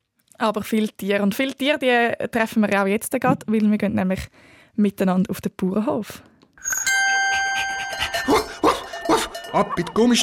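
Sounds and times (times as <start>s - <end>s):
speech: 0.4s - 6.8s, 9.5s - 10.2s
steady bell-like ringing tone: 6.6s - 10.2s
farm dog barking: 8.2s - 9.4s.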